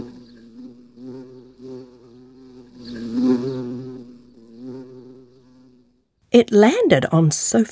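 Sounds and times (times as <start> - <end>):
bee buzzing around a room: 0.0 - 7.3
speech: 6.3 - 7.7.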